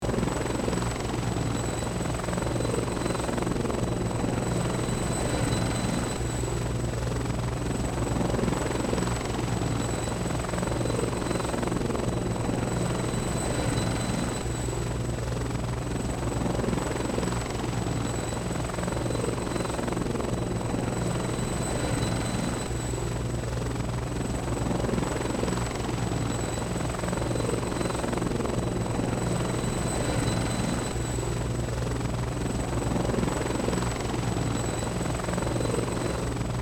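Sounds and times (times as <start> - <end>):
military helicopter engine flying forward: 0.0 - 36.6.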